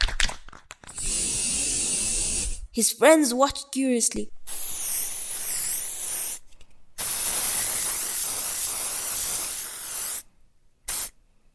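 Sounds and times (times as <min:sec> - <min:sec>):
aerosol spray paint can spraying paint onto an old wall: 0:01.0 - 0:02.5, 0:04.5 - 0:06.4, 0:07.0 - 0:10.3, 0:10.9 - 0:11.2
speech: 0:02.8 - 0:04.4.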